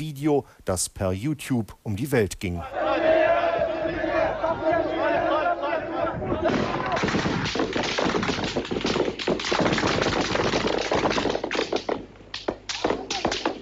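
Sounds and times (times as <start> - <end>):
speech: 0.0 - 3.0, 6.4 - 7.7
crowd of unarmed protesters chanting in unison: 2.6 - 7.1
people shouting: 2.7 - 7.5, 12.8 - 13.6
soldiers firing live ammunition in rapid bursts: 6.5 - 13.6.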